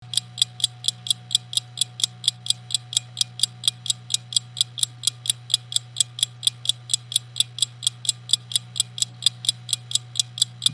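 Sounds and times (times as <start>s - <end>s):
pointed-tooth anchor escapement: 0.0s - 10.7s.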